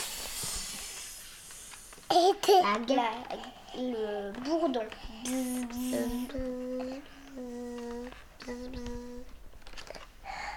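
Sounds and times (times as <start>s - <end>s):
person imitating a snake with a breathy hiss: 0.0s - 1.9s
speech: 2.1s - 7.1s.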